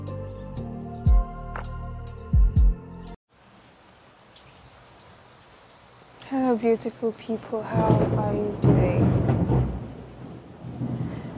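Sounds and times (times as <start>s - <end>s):
steady rain hiss: 3.3s - 7.7s, 9.1s - 11.3s
speech: 6.3s - 9.2s
low heavy rumble of thunder: 7.6s - 11.3s.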